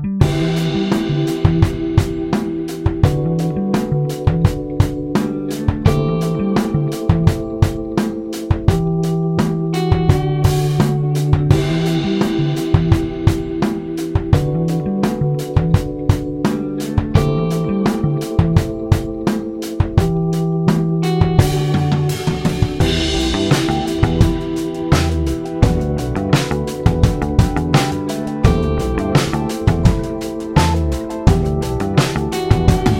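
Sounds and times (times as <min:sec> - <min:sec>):
drums: 0:00.2 - 0:32.9.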